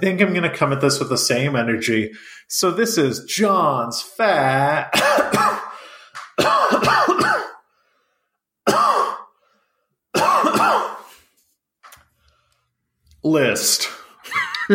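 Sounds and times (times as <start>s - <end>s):
speech: 0.0s - 5.6s, 13.2s - 14.0s
person coughing: 4.9s - 5.8s, 6.4s - 7.6s, 8.7s - 9.3s, 10.1s - 11.2s
laughter: 14.2s - 14.7s.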